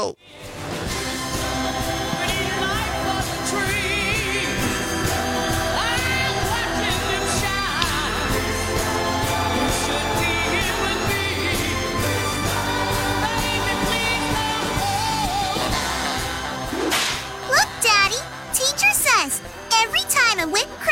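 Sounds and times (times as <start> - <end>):
speech: 0.0 - 1.0
dense musical bed: 0.1 - 20.9
loud sharp whip cracks: 16.8 - 17.3.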